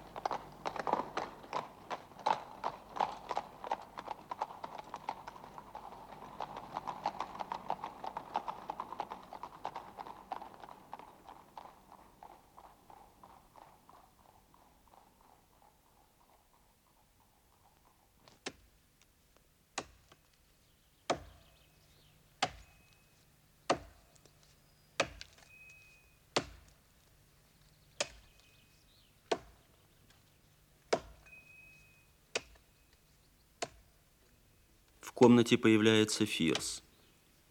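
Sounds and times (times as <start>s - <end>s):
horses' hooves clip-clopping: 0.0s - 37.4s
speech: 35.2s - 36.9s.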